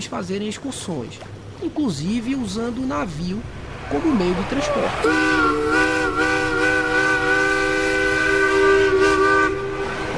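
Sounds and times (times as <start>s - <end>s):
speech: 0.0s - 6.4s
hissing rumbling background: 0.0s - 10.1s
steamship departure steam whistle blasting: 4.9s - 10.1s.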